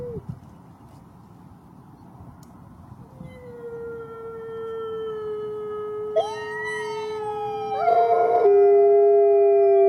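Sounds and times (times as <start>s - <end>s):
wolf pack howling: 3.0s - 9.8s.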